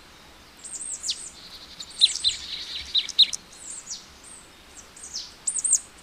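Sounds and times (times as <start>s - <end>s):
marsh tit calling with high clipped notes: 0.6s - 4.0s, 4.8s - 6.0s.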